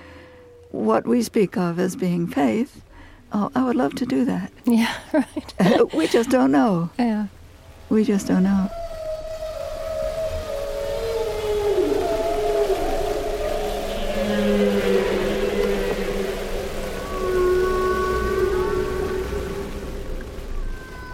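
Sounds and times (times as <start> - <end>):
speech: 0.7 - 8.8
humpback whale song moans and wails: 8.7 - 21.1
steady watery hiss: 9.3 - 21.1.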